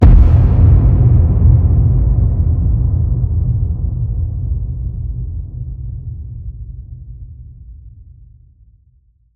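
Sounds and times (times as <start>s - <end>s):
designed low cinematic hit: 0.0s - 6.5s.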